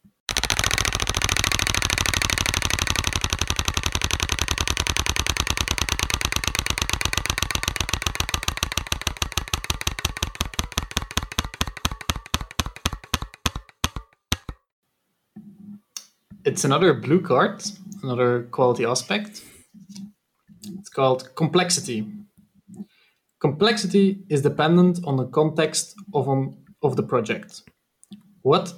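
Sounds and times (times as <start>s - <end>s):
prize wheel in a roulette-style card game spinning and ticking: 0.3s - 14.6s
speech: 16.6s - 19.5s, 21.0s - 22.2s, 23.6s - 27.7s, 28.4s - 28.7s.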